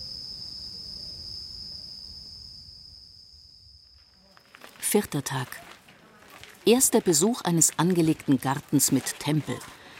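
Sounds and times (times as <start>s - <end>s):
cicadas chirping: 0.0s - 4.8s
speech: 4.9s - 5.7s, 6.6s - 9.8s.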